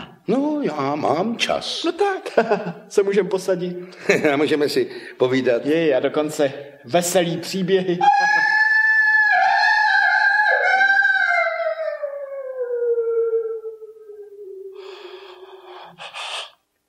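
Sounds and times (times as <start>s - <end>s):
speech: 0.3s - 8.5s
wolf howling: 8.0s - 14.9s.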